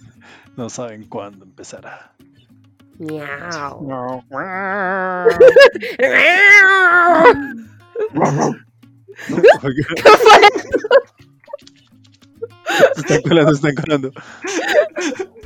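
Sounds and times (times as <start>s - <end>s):
speech: 0.6s - 2.2s, 3.0s - 8.6s, 9.2s - 11.2s, 12.7s - 15.4s
person imitating a cat with drawn-out gliding meows: 3.2s - 5.3s, 6.1s - 7.5s
laughter: 5.2s - 6.4s, 9.2s - 11.8s, 12.7s - 15.4s.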